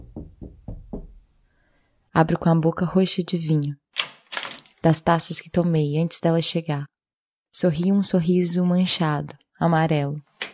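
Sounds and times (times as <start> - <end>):
firm knocking on a wooden door: 0.0 - 1.2
speech: 2.2 - 3.8, 4.8 - 10.3.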